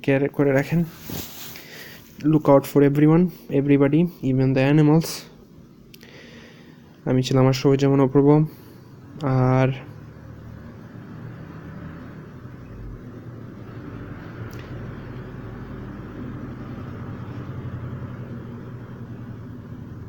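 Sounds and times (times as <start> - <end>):
speech: 0.0 - 1.2, 2.2 - 5.3, 7.0 - 8.6, 9.2 - 9.9
traffic roar of passing cars: 9.8 - 20.0.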